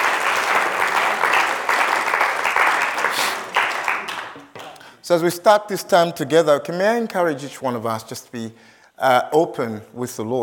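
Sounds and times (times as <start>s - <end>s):
crowd clapping: 0.0s - 4.9s
speech: 5.1s - 10.4s.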